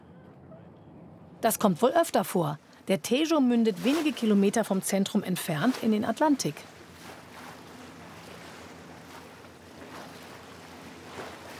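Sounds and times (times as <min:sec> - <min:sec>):
boat moving across the water of the Tejo river: 0:00.0 - 0:11.5
low boat engine drone: 0:00.0 - 0:11.5
speech: 0:01.4 - 0:06.8
wash of waves and spray on the Tejo river: 0:02.6 - 0:11.5
water splashing: 0:03.0 - 0:11.5.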